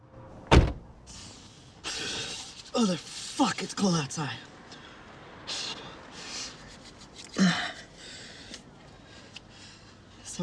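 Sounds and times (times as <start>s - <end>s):
car door shutting: 0.4s - 0.8s
speech: 2.8s - 4.5s.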